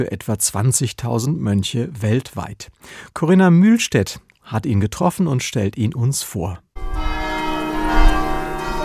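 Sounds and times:
speech: 0.0s - 6.7s
church bells ringing: 6.8s - 8.8s.

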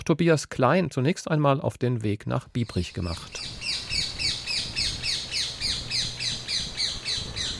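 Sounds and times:
speech: 0.0s - 3.6s
rose-ringed parakeets calling in the palace park at Biebrich, Wiesbaden: 2.6s - 7.5s.

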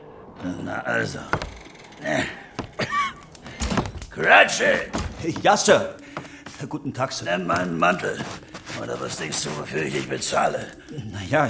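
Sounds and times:
speech: 0.4s - 2.4s, 4.2s - 6.0s, 6.6s - 11.4s
stubborn door thumping and rattling while being opened: 1.2s - 6.5s.

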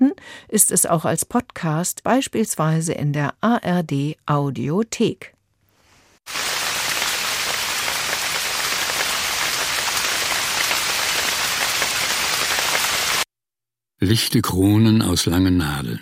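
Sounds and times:
speech: 0.1s - 5.4s, 14.0s - 16.0s
heavy rain with hard raindrops in pine forest: 6.3s - 13.2s.

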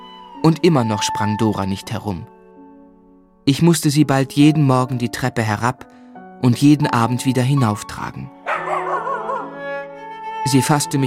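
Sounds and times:
speech: 0.4s - 2.4s, 3.4s - 8.4s, 10.4s - 11.0s
dog barking: 8.5s - 9.6s.

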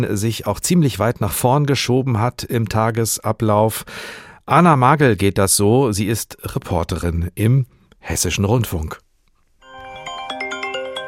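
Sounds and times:
speech: 0.0s - 9.0s
smartphone alarm ringing electronic melody: 9.6s - 11.0s.

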